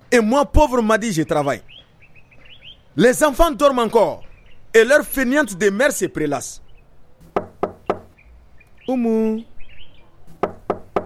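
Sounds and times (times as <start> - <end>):
speech: 0.1 - 1.8, 3.0 - 6.6, 8.9 - 9.5
sharp knocks on a door: 7.2 - 8.1, 10.3 - 11.0.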